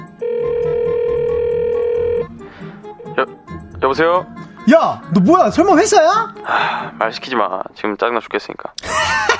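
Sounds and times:
telephone ringback tone while calling a friend: 0:00.2 - 0:02.3
speech: 0:03.9 - 0:08.9
laughter: 0:08.8 - 0:09.3.

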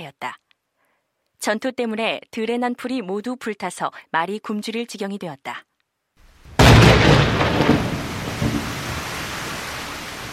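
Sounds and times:
speech: 0:00.0 - 0:00.4, 0:01.4 - 0:05.7
heavy rain: 0:06.4 - 0:10.3.

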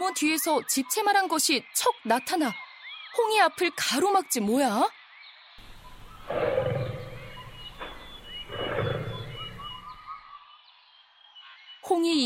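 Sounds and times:
speech: 0:00.1 - 0:05.0, 0:06.3 - 0:06.6, 0:11.9 - 0:12.2
tiger roaring: 0:05.6 - 0:10.0
faint forest birdsong chirping: 0:05.6 - 0:10.1.

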